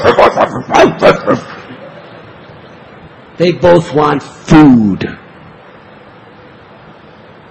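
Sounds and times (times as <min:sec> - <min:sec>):
two dogs barking: 0:00.0 - 0:01.4
laughter: 0:00.0 - 0:02.1
speech: 0:03.4 - 0:05.2.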